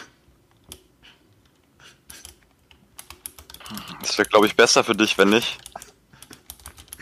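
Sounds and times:
typing a message on a computer keyboard: 0:01.4 - 0:06.9
speech: 0:03.7 - 0:05.7.

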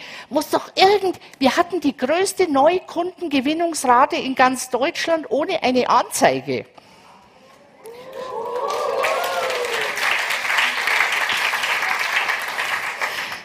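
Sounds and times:
speech: 0:00.3 - 0:06.8
crowd applauding: 0:07.8 - 0:13.4.

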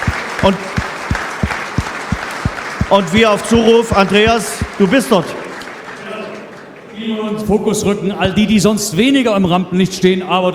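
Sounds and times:
audience applause at a stadium event: 0:00.0 - 0:06.9
speech: 0:00.4 - 0:00.7, 0:02.9 - 0:05.4, 0:07.0 - 0:10.5.

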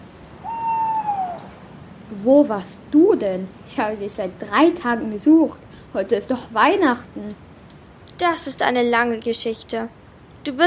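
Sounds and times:
faint hissy background: 0:00.0 - 0:10.6
owl hooting: 0:00.4 - 0:01.7
speech: 0:02.1 - 0:07.5, 0:08.2 - 0:10.6.

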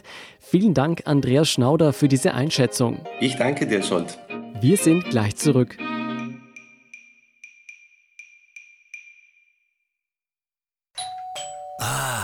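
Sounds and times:
speech: 0:00.5 - 0:05.9
doorbell chime ringing as a food delivery arrives: 0:11.0 - 0:11.8.

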